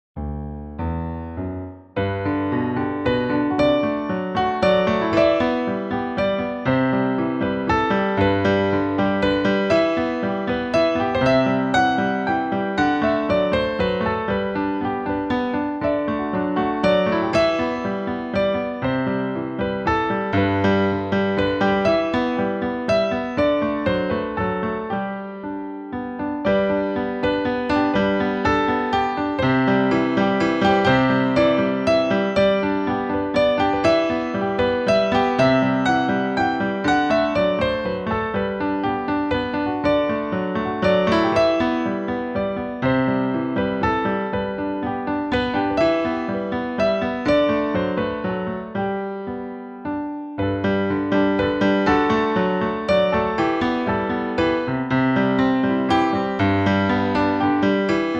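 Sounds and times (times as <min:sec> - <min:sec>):
piano waltz: 0:00.2 - 0:58.1.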